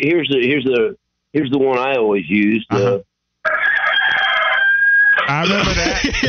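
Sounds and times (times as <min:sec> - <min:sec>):
speech: 0:00.0 - 0:03.1, 0:05.3 - 0:06.2
laughter: 0:02.7 - 0:03.0, 0:05.3 - 0:06.2
rooster crowing: 0:03.4 - 0:05.3.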